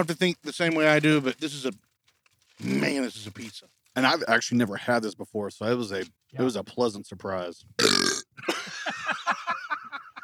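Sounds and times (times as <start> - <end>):
speech: 0.0 - 1.9, 2.6 - 9.2
loud exaggerated cartoonish croaking burp: 7.8 - 8.4
laughter: 8.4 - 10.2.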